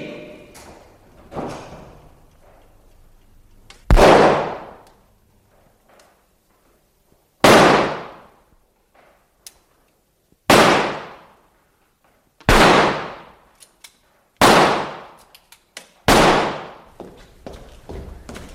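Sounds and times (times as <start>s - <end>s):
gunshots: 3.9s - 4.8s, 7.4s - 8.3s, 10.5s - 11.3s, 12.5s - 13.4s, 14.4s - 15.2s, 16.1s - 16.9s.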